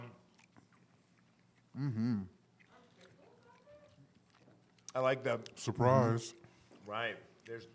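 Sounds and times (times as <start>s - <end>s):
person chewing a sandwich: 0.0s - 5.6s
person humming mmm in enjoyment: 1.8s - 2.4s
speech: 1.8s - 2.4s, 5.0s - 7.7s.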